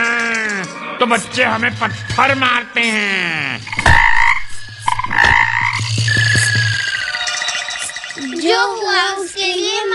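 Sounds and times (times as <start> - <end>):
speech: 1.0 - 4.0, 8.4 - 9.9
frogs croaking: 3.6 - 8.8.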